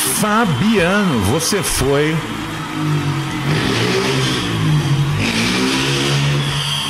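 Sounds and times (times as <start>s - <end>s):
speech: 0.2s - 3.7s
motorcycle engine revving outside: 2.2s - 6.8s.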